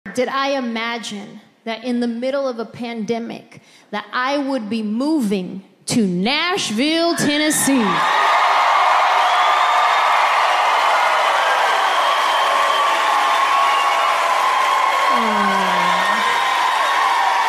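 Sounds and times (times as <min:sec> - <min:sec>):
speech: 0:00.2 - 0:08.3
whoops and shouts: 0:07.8 - 0:17.4
large audience cheering in Nashville, Tennessee: 0:07.9 - 0:17.4.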